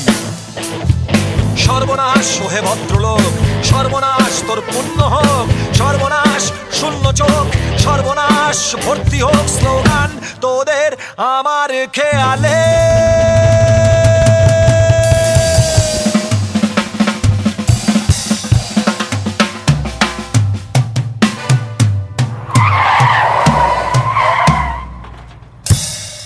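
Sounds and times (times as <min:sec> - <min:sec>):
loud beat-driven music: 0:00.0 - 0:10.2, 0:12.2 - 0:25.0
speech: 0:01.8 - 0:13.4
car brakes screeching and tires skidding: 0:22.2 - 0:25.7.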